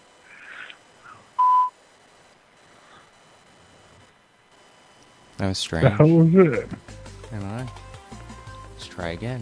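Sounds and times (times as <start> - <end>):
phone line noise: 0.0 - 6.9
electronic beep on a phone line: 1.4 - 1.8
speech: 5.4 - 7.8, 9.0 - 9.4.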